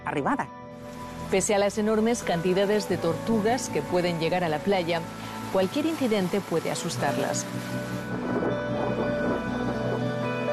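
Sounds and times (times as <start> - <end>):
speech: 0.1 - 8.4
steady roar of heavy rain: 0.8 - 10.5
deep rolling thunder: 8.0 - 10.5.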